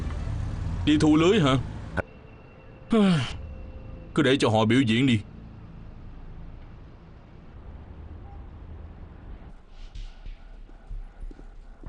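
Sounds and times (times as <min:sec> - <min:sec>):
speech: 0:00.8 - 0:01.7, 0:02.9 - 0:03.4, 0:04.2 - 0:05.3
horse hooves clip-clopping as a carriage arrives: 0:09.6 - 0:11.8.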